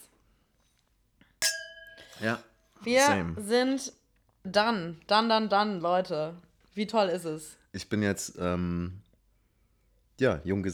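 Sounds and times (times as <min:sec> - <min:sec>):
wine glasses clinking in a toast: 0:01.4 - 0:03.4
speech: 0:02.2 - 0:09.0, 0:10.2 - 0:10.7.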